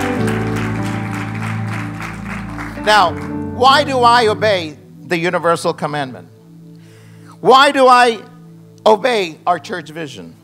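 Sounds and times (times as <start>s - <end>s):
large crowd clapping enthusiastically: 0.0s - 3.9s
speech: 2.9s - 6.3s, 7.4s - 10.4s.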